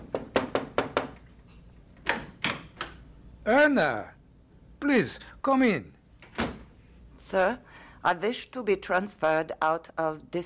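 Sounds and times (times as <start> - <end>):
knocks on a wooden door: 0.0 - 1.2
speech: 3.4 - 4.2, 4.8 - 6.0, 7.3 - 10.4.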